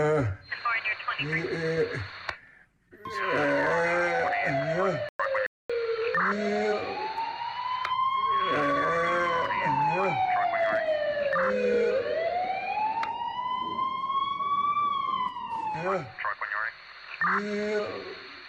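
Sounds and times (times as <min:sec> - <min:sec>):
brief bursts of voices: 0:00.0 - 0:02.4, 0:03.0 - 0:18.4
ambulance siren wailing in Calabar: 0:03.0 - 0:16.2.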